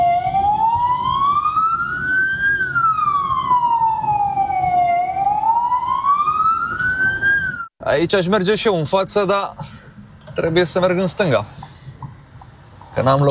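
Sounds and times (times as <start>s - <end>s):
ambulance or police siren wailing at a busy road intersection: 0.0s - 7.7s
traffic and engine noise at a busy road intersection: 0.0s - 13.2s
speech: 8.0s - 9.8s, 10.4s - 11.6s, 13.0s - 13.2s.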